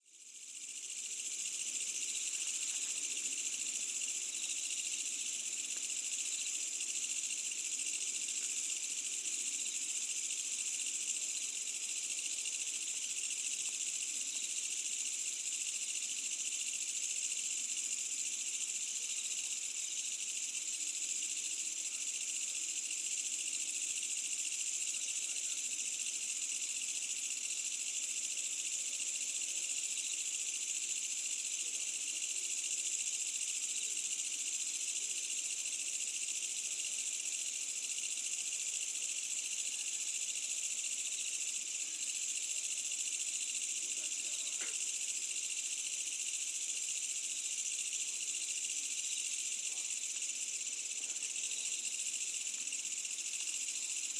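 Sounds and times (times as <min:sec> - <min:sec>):
summer night insects in Asian countryside village: 0:00.0 - 0:54.1.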